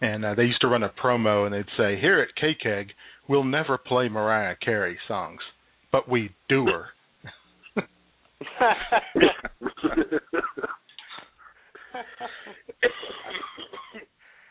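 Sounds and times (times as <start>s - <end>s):
speech: 0.0s - 10.8s
laughter: 7.7s - 13.4s
person coughing harshly: 9.2s - 11.3s, 12.7s - 14.1s.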